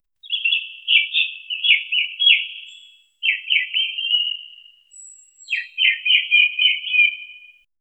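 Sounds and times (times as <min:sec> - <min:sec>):
distant bird call echoing through a dense forest: 0:00.2 - 0:07.6.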